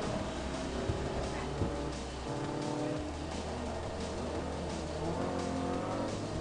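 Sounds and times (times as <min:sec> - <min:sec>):
small car engines revving in a video-game race: 0:00.0 - 0:06.4
tire squeals in a video-game race: 0:00.0 - 0:06.4.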